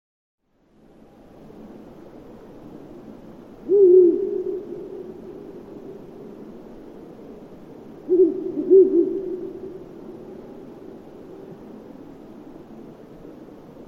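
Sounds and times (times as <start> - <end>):
Ural owl hooting: 3.6 - 6.4, 8.0 - 10.8.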